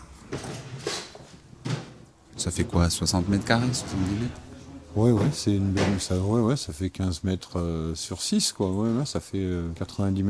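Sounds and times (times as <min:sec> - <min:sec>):
door being pushed open scraping and knocking: 0:00.3 - 0:06.2
speech: 0:02.4 - 0:10.2.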